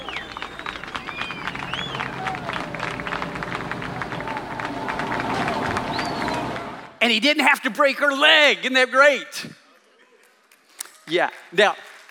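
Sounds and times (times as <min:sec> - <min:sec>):
crowd applauding as a rescued girl is brought up from a shaft: 0:00.0 - 0:07.0
high whistles from crowd: 0:00.0 - 0:07.0
speech: 0:07.1 - 0:09.6, 0:11.1 - 0:12.0.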